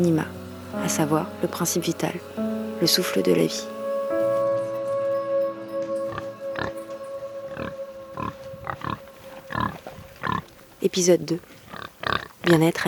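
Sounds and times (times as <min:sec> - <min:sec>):
speech: 0:00.0 - 0:03.7, 0:10.8 - 0:11.6, 0:12.5 - 0:12.8
steady humming drone: 0:00.0 - 0:10.5
pigs grunting on a small organic pig and cattle farm: 0:07.5 - 0:10.5, 0:11.7 - 0:12.6.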